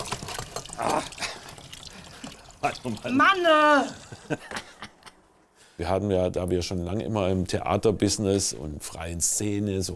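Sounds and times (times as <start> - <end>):
water splashing from a tap and spraying off a hand: 0.0 - 3.9
speech: 2.6 - 4.6, 5.8 - 9.9.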